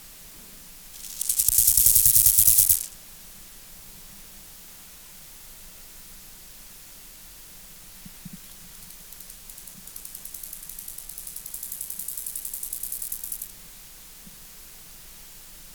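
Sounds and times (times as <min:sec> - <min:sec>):
Chorthippus moreanus grasshopper song: 0:00.9 - 0:02.9, 0:08.7 - 0:13.5.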